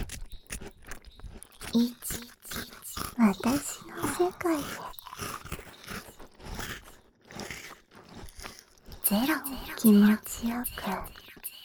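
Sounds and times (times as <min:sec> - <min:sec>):
wet chewing and mouth noises: 0:00.0 - 0:11.6
faint voiced hum: 0:01.7 - 0:06.1, 0:09.0 - 0:11.6
speech: 0:01.8 - 0:02.2, 0:03.2 - 0:05.3, 0:09.1 - 0:11.2.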